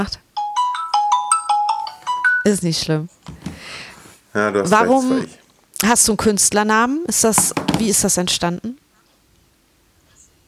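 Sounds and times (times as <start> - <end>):
speech: 0.0 - 0.2, 2.4 - 3.2, 4.4 - 8.8
phone ringtone electronic melody: 0.4 - 2.6.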